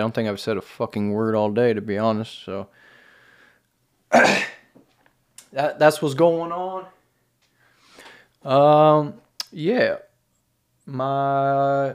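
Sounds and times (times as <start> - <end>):
speech: 0.0 - 2.9, 4.1 - 4.6, 5.5 - 7.0, 8.4 - 10.0, 10.9 - 11.9
person clearing throat with a rough gravelly rasp: 4.1 - 4.7.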